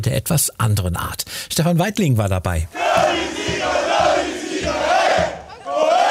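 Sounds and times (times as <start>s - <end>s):
speech: 0.0s - 5.4s
large crowd of football fans cheering and chanting after the final whistle: 2.7s - 6.0s
rhythmic low thumps of clapping or drumming: 2.8s - 6.0s.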